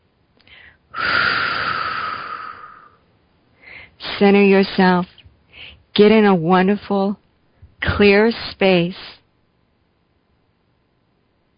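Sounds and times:
faint breath: 0.4 - 3.0, 3.6 - 4.0, 5.5 - 5.9
long breathy exhale through the mouth: 0.5 - 3.0
speech: 4.2 - 5.1, 6.0 - 7.2, 7.9 - 9.1.

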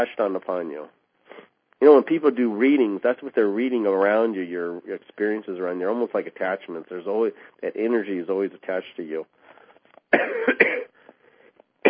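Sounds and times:
speech: 0.0 - 9.4, 10.1 - 10.8
man clearing his throat: 10.1 - 11.0
man coughing: 10.1 - 11.0.

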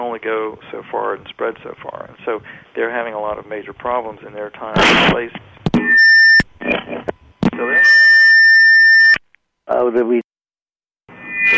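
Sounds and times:
speech: 0.2 - 5.8, 9.8 - 10.2
loud electronic beep signalling time is up: 5.8 - 9.2, 11.1 - 11.5.

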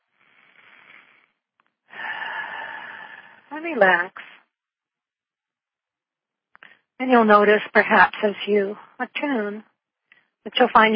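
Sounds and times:
deep breath in and out during a guided attunement: 0.1 - 3.5
speech: 3.6 - 4.3, 7.0 - 9.7, 10.4 - 10.9.

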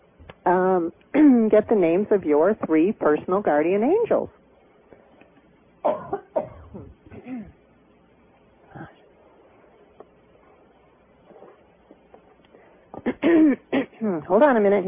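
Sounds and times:
speech: 0.5 - 4.4, 14.3 - 14.8
person coughing: 5.8 - 7.6, 13.0 - 14.2.

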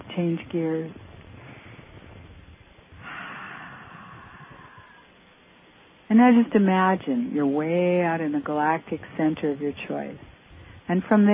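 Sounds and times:
speech: 0.2 - 1.0, 6.1 - 10.3, 10.9 - 11.3
soft deep breath during guided relaxation: 1.0 - 5.4, 10.4 - 10.9.

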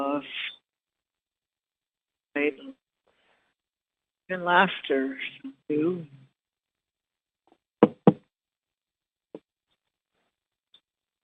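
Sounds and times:
speech: 4.3 - 6.2
coffee cup set down on a table: 7.8 - 8.2.

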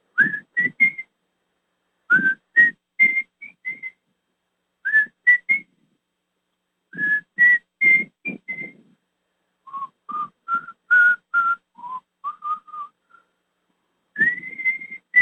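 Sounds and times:
person whistling the opening melody of a rock song: 0.2 - 1.1, 2.1 - 4.0, 4.9 - 5.7, 7.0 - 8.9, 9.7 - 13.2, 14.2 - 15.2.

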